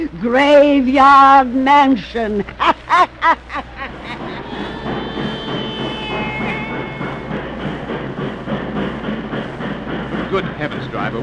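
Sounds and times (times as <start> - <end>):
speech: 0.0 - 3.4, 10.3 - 11.2
train rumbling outside a small railway depot in Louisiana: 0.0 - 11.2
laughter: 2.4 - 4.6
high metallic squeal of a slowing train: 3.4 - 10.4.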